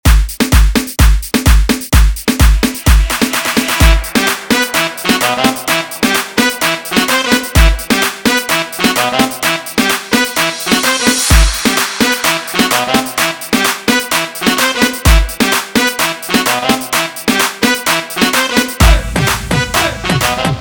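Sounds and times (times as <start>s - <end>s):
aleteo dance music: 0.0s - 20.5s.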